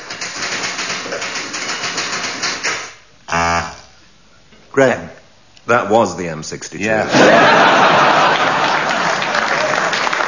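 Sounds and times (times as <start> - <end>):
Smith Corona typewriter keys clattering: 0.0 - 2.9
speech: 4.8 - 8.5
laughter: 7.0 - 10.2.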